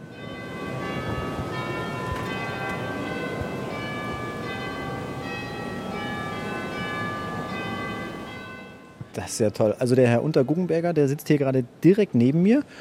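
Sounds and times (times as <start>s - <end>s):
steady dense organ sound: 0.0s - 8.8s
organ glockenspiel bells struck by small hammers: 0.0s - 9.3s
speech: 9.2s - 12.7s.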